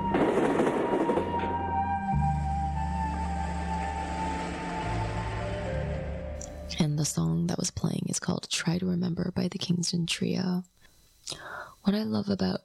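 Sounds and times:
train rolling on rails: 0:00.0 - 0:06.3
speech: 0:07.0 - 0:12.6.

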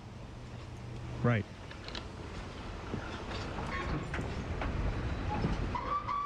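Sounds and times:
speech: 0:01.2 - 0:01.6
moving train rattling on rails: 0:02.2 - 0:06.2
metallic squeal: 0:05.0 - 0:06.2.

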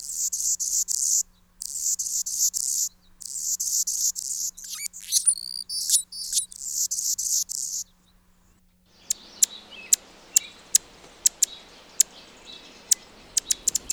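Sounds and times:
Anna's hummingbird song: 0:00.0 - 0:08.2, 0:08.9 - 0:13.9
faint noise and clicks: 0:08.3 - 0:13.9.

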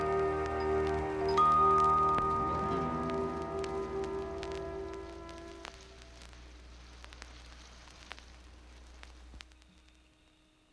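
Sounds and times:
sustained low musical tones: 0:00.0 - 0:06.6
steady rain pattering and dripping: 0:00.0 - 0:10.4.

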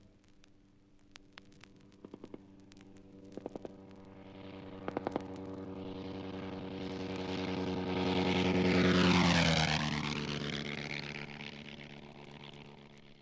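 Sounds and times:
1916 Nieuport propeller fighter plane flying by: 0:01.8 - 0:13.1.

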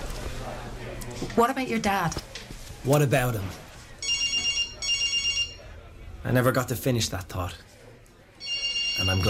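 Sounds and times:
speech: 0:01.4 - 0:02.3, 0:02.8 - 0:03.6, 0:06.3 - 0:07.7, 0:09.0 - 0:09.2
telephone ringing with electronic warbling trill: 0:04.0 - 0:05.7, 0:08.4 - 0:09.2.

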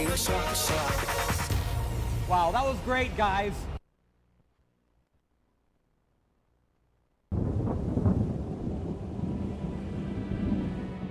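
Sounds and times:
speech: 0:00.2 - 0:01.1, 0:02.3 - 0:03.7
thunder rumbling during a thundersnow storm in Chicago: 0:07.3 - 0:11.0
wind or storm noise: 0:07.3 - 0:11.0.

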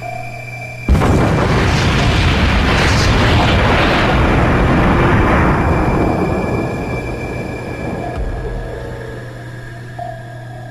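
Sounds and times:
massive torpedo explosion boom with rumbling decay: 0:00.9 - 0:09.0.

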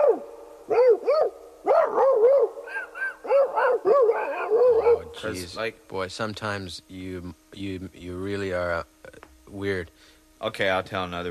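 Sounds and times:
several dogs barking and whining while fighting: 0:00.0 - 0:05.4
speech: 0:05.2 - 0:11.2.

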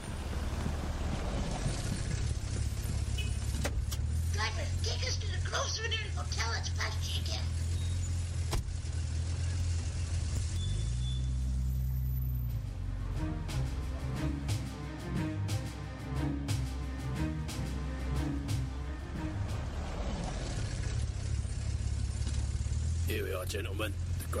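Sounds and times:
taxi cab engine idling and pulling away: 0:00.0 - 0:24.3
speech: 0:04.9 - 0:07.6, 0:23.5 - 0:24.3.

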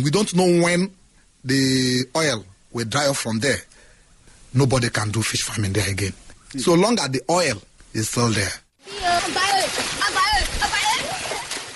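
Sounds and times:
speech: 0:00.0 - 0:03.7, 0:04.5 - 0:10.0
water splashing and sloshing in a stream: 0:08.8 - 0:11.7
children shouting and calling out while playing in a stream: 0:08.9 - 0:11.6.

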